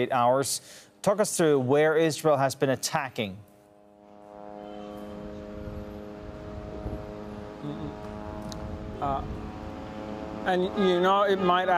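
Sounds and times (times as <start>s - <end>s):
speech: 0.0s - 3.5s, 9.0s - 9.4s, 10.4s - 11.7s
military drones hovering at very low level over Gaza City: 3.2s - 11.7s.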